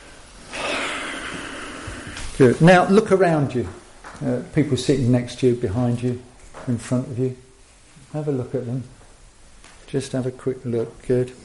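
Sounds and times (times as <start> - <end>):
people in a workshop inhaling deeply together: 0.4 - 2.4
speech: 2.4 - 7.4, 8.1 - 9.0, 9.9 - 11.4.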